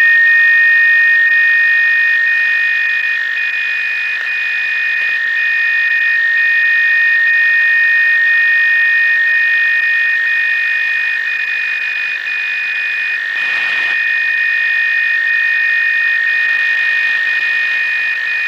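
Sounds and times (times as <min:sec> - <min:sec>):
DCF77 radio time signal: 0:00.1 - 0:18.4.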